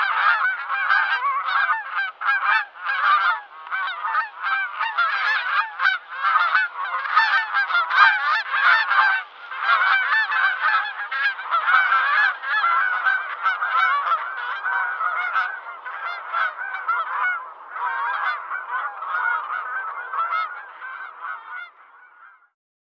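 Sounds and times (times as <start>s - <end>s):
dense chorus of bird nasal honks: 0.0s - 22.5s.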